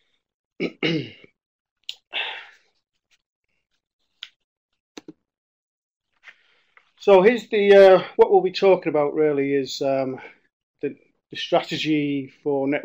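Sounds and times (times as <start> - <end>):
person with a cold clearing throat: 0.6 - 1.3
speech: 0.6 - 1.3, 7.1 - 12.8.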